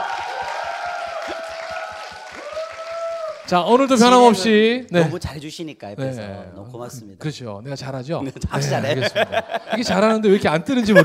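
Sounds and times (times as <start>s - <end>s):
audience applauding: 0.0s - 4.4s
speech: 3.5s - 11.0s
laughter: 8.2s - 11.0s.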